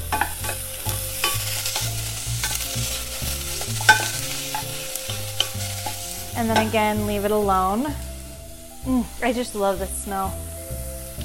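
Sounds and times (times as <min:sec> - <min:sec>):
onions sautéing in a pan: 0:00.0 - 0:11.2
stirring scraping and clicking strokes in a pan: 0:00.1 - 0:07.0
speech: 0:06.4 - 0:08.1, 0:08.8 - 0:10.5.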